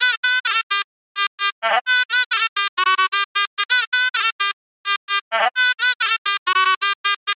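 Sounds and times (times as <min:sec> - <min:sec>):
baraat shehnai loop: 0:00.0 - 0:07.3.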